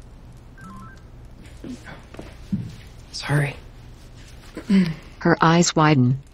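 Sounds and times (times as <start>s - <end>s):
low hum: 0.0s - 6.3s
phone email notification chime: 0.6s - 1.0s
soft rustling: 1.3s - 5.1s
speech: 1.6s - 3.6s, 4.7s - 6.3s.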